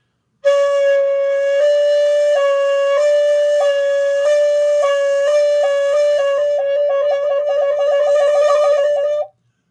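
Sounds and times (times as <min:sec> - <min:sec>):
solo flute played very slowly with overlapping fingering: 0:00.4 - 0:09.3.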